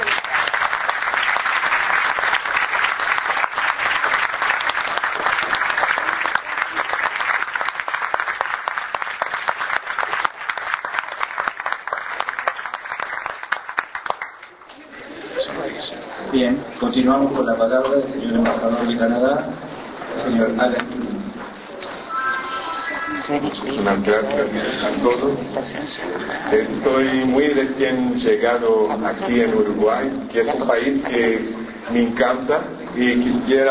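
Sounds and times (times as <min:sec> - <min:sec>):
large audience applause at an event in Uruguay: 0:00.0 - 0:15.0, 0:22.0 - 0:25.3
speech: 0:17.0 - 0:19.6, 0:20.3 - 0:21.0, 0:23.3 - 0:33.6.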